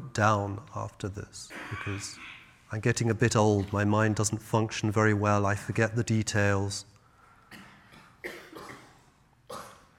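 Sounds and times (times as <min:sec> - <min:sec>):
speech: 0:00.2 - 0:06.9
audience members coughing in a large room: 0:07.5 - 0:09.9.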